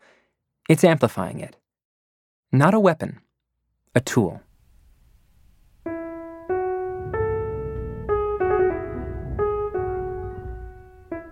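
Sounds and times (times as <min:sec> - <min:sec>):
speech: 0:00.7 - 0:01.6, 0:02.5 - 0:03.2, 0:03.9 - 0:04.5
piano music generated by a computer algorithm: 0:05.5 - 0:11.2.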